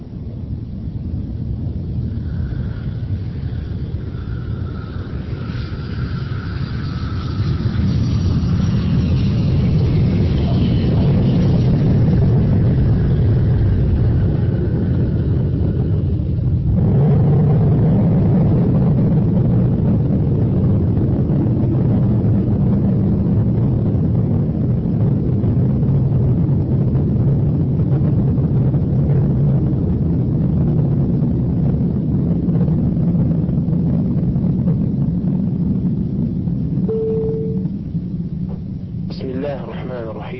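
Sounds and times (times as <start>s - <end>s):
jet engines roaring in an airplane cabin during landing: 0.0s - 40.3s.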